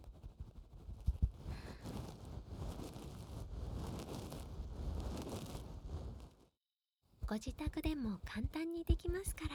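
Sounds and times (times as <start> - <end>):
warm damp steamed towel rubbing and wiping against the microphone: 0.1 - 6.5
speech: 7.3 - 9.5.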